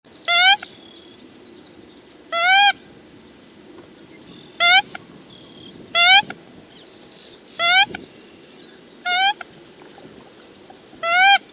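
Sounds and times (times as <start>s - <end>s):
American coot calling: 2.3s - 2.8s, 4.6s - 5.0s, 7.6s - 8.0s, 9.1s - 9.4s, 11.0s - 11.5s.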